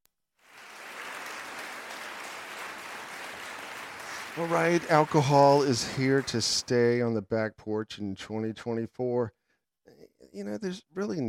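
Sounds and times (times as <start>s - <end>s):
large crowd applauding: 0.4s - 7.1s
speech: 4.4s - 9.4s, 10.3s - 11.2s.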